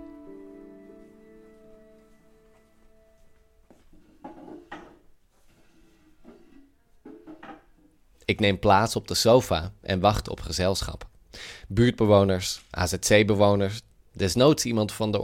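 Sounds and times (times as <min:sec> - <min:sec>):
chair dragged across a living room floor: 0:03.7 - 0:07.7
chair wooden clunks and bumps as it is set down: 0:04.2 - 0:05.1, 0:06.2 - 0:07.8
speech: 0:08.3 - 0:15.2.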